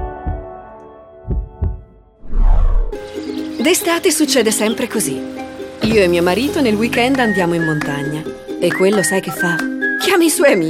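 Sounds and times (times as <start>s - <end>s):
deep heartbeat thumps: 0.0s - 0.6s, 1.2s - 3.0s
loud rushing swell: 2.2s - 3.1s
speech: 3.6s - 10.6s.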